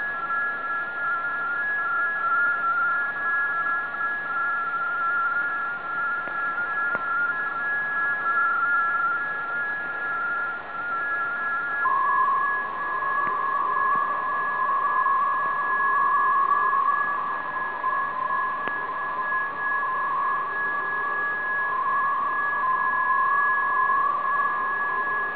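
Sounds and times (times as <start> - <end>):
VFT aggregate data signal at 75 Bd changing to 150 Bd: 0.0 - 25.3.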